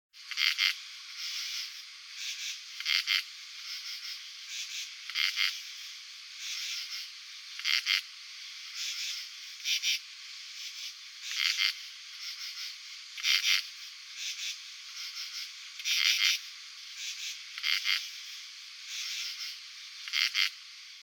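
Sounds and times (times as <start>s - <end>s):
male northern true katydid in the cold: 0.2s - 21.0s.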